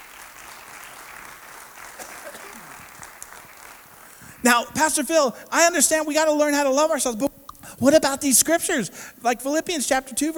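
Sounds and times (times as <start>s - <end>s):
crowd applauding: 0.0s - 4.4s
speech: 4.4s - 10.3s.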